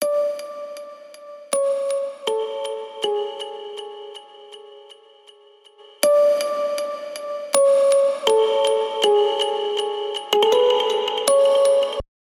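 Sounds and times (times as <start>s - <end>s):
music box: 0.0s - 12.0s.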